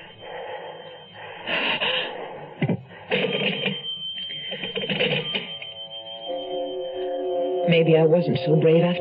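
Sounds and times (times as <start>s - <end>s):
breathing: 0.0s - 3.2s
telephone ringing: 3.1s - 8.9s
speech: 7.7s - 8.9s.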